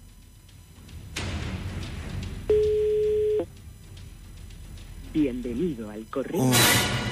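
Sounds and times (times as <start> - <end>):
telephone line tone beep during a call: 2.5 - 3.5
speech: 5.2 - 7.0.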